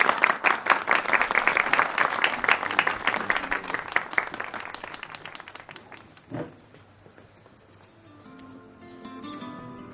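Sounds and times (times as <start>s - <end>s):
crowd applauding: 0.0s - 6.4s.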